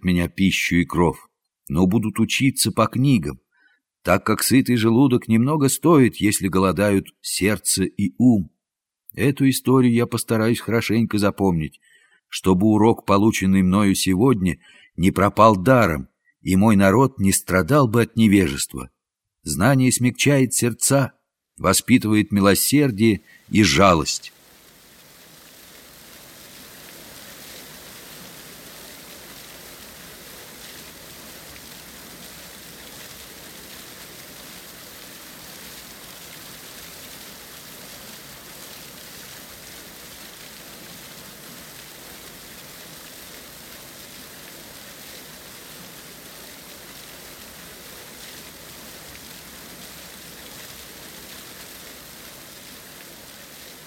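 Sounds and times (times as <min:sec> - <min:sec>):
speech: 0:00.0 - 0:03.4, 0:04.0 - 0:24.4
dense rain falling at night: 0:22.6 - 0:53.8.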